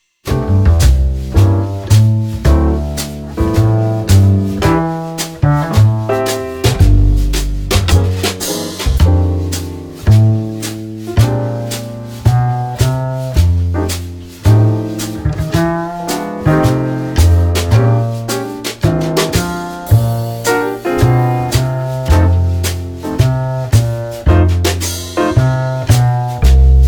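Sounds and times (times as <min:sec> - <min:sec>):
flute playing swing blues in F: 0:00.3 - 0:26.8.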